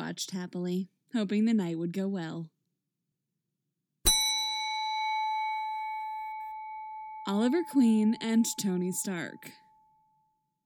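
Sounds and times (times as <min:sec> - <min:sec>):
speech: 0:00.1 - 0:02.5, 0:07.3 - 0:09.6
single bell ringing: 0:04.1 - 0:10.3.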